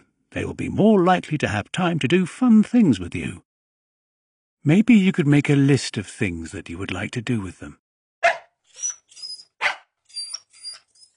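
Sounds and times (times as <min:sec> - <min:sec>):
speech: 0:00.3 - 0:03.5, 0:04.6 - 0:07.8
dog barking: 0:08.2 - 0:08.6, 0:09.6 - 0:09.9
dog yelping and whining: 0:08.2 - 0:11.1.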